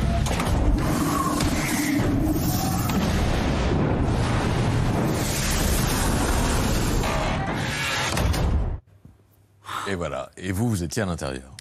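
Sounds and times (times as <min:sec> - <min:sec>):
giant flame roaring and drawing in air: 0:00.1 - 0:08.2
speech: 0:09.9 - 0:11.6.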